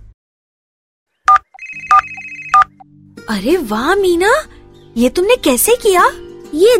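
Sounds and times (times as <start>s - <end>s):
mobile phone ringing: 1.3s - 2.8s
speech: 3.3s - 6.7s.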